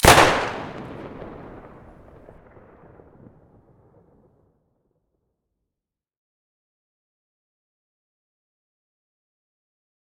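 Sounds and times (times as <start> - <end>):
Saiga shotgun firing with muzzle device: 0.0 - 2.2.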